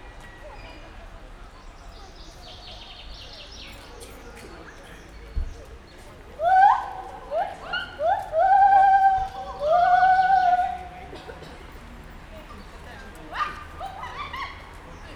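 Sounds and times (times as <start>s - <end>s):
captive white-handed gibbon calling at a zoo: 6.4s - 10.9s.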